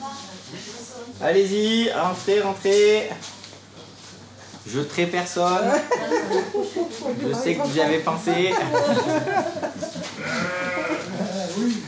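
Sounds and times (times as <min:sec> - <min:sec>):
speech: 0:01.1 - 0:03.4, 0:04.7 - 0:10.6
laughter: 0:05.6 - 0:11.8
flock of ewes bleating entering a milking parlour: 0:10.2 - 0:11.3.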